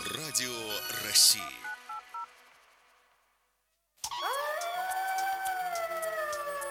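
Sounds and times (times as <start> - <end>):
speech: 0.1 - 1.7
several wolves howling together: 4.1 - 6.7.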